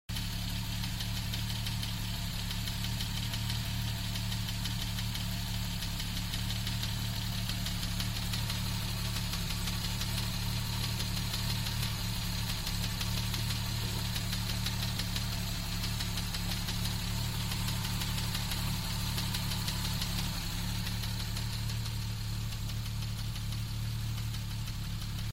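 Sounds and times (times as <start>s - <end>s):
Jaguar Mk2 engine tappet noise: 0.2s - 25.3s.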